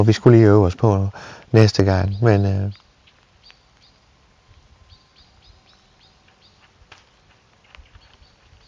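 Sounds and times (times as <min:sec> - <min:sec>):
speech: 0:00.0 - 0:02.8
agitated blackbird sharp clipped alarm calls: 0:00.0 - 0:08.6
light rain: 0:00.0 - 0:08.6
soft outdoor rumble: 0:00.0 - 0:08.6.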